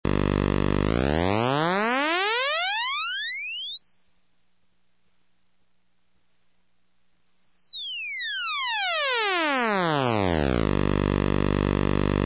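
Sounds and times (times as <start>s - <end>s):
pulse wave sweep: 0.1s - 4.2s, 7.4s - 12.2s.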